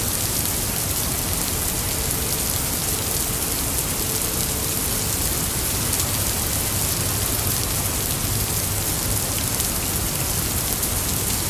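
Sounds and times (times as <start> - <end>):
rainstorm: 0.0 - 11.4.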